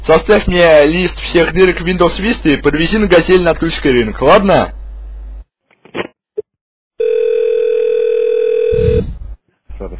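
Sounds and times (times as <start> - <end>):
speech: 0.0 - 4.8
telephone handset dial tone after the other party hangs up: 7.0 - 9.0.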